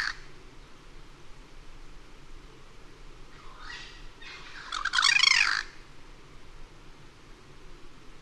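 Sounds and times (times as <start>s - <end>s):
Cuban Crow calling with harsh squawky notes from a dead snag: 0.0s - 0.3s, 3.4s - 5.8s
low background hiss: 0.0s - 8.2s.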